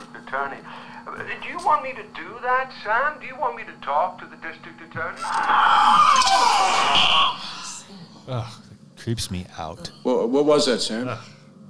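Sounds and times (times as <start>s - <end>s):
speech: 0.3s - 7.6s, 8.3s - 11.3s
person screaming: 5.2s - 7.9s.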